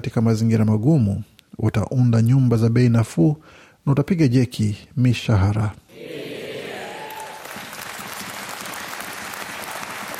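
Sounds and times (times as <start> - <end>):
speech: 0.1 - 5.8
applause from government-side members of parliament celebrating a 2023 budget speech: 7.1 - 10.1.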